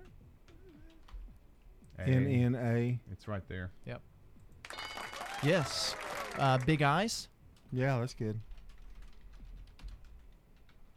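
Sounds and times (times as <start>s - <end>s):
typing on a computer keyboard: 0.5s - 1.3s, 8.4s - 10.9s
speech: 2.0s - 4.1s, 5.4s - 8.5s.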